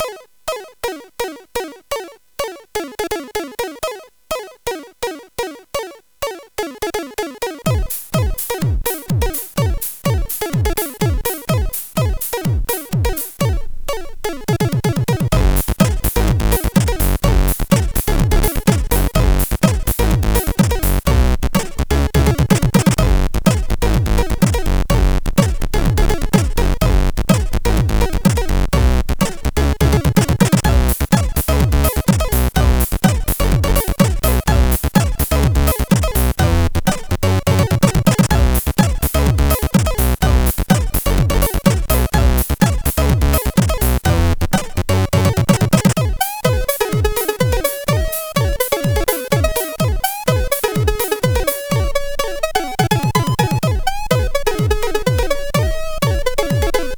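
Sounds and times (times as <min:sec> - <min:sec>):
funky groove on SID chip CSG8580R5: 0:02.8 - 0:56.9.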